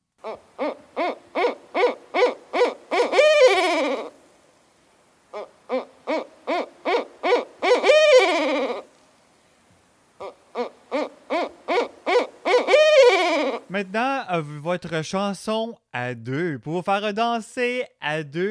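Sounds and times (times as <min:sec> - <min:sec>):
bird calling: 0:00.2 - 0:04.2, 0:05.3 - 0:09.0, 0:10.1 - 0:13.8
speech: 0:14.8 - 0:18.4.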